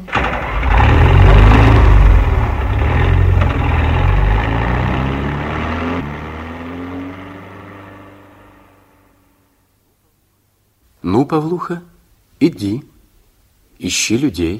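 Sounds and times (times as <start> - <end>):
car engine revving: 0.1 - 9.4
speech: 11.2 - 12.9, 13.8 - 14.5.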